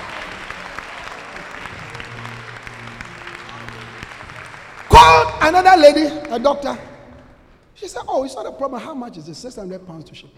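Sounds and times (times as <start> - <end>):
audience clapping hands: 0.0 - 7.0
speech: 5.2 - 6.9, 7.8 - 10.3.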